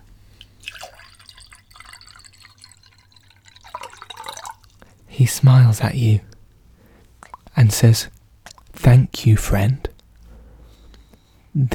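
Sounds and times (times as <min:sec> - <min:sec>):
low steady hum: 0:00.0 - 0:11.7
dripping: 0:00.3 - 0:05.2, 0:06.8 - 0:08.8
liquid poured into a glass beaker: 0:00.4 - 0:05.1
speech: 0:05.2 - 0:06.3, 0:07.7 - 0:08.2, 0:09.2 - 0:09.9.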